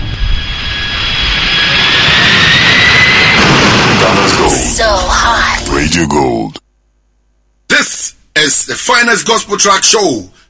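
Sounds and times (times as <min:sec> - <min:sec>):
jet aircraft taking off from a runway: 0:00.0 - 0:05.7
speech: 0:06.0 - 0:06.6, 0:08.5 - 0:10.4.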